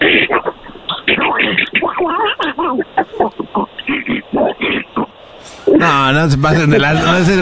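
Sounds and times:
person imitating a cartoon duck voice: 0:00.0 - 0:05.8
laughter: 0:05.7 - 0:07.4
speech: 0:05.8 - 0:07.4.

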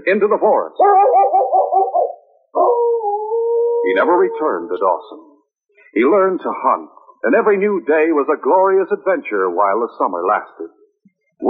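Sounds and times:
speech: 0:00.0 - 0:01.9, 0:03.8 - 0:05.3, 0:05.9 - 0:10.8
drawn-out wavering howls from distant woods: 0:00.8 - 0:05.3.

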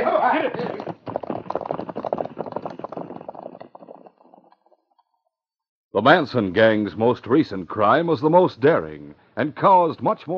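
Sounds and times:
horses' hooves galloping: 0:00.0 - 0:05.0
speech: 0:06.0 - 0:10.3.

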